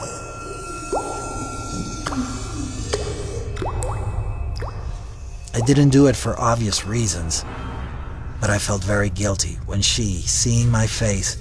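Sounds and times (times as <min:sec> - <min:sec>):
low rumble: 0:00.4 - 0:11.3
blood dripping from a knife into a puddle: 0:02.0 - 0:06.2
speech: 0:05.6 - 0:07.7, 0:08.4 - 0:11.3.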